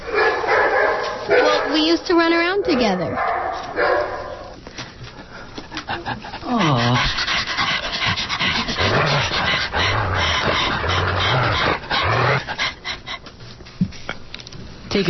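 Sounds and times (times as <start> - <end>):
dog barking: 0.0 - 2.0, 2.6 - 4.5
speech: 2.0 - 4.1, 6.0 - 7.2
dog panting: 5.1 - 13.4.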